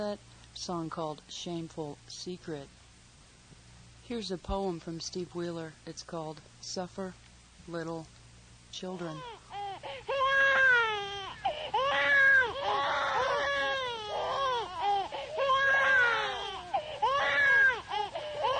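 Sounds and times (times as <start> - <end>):
speech: 0.0 - 2.8, 4.1 - 9.4
newborn baby crying in wailing breathy bursts: 9.1 - 18.5.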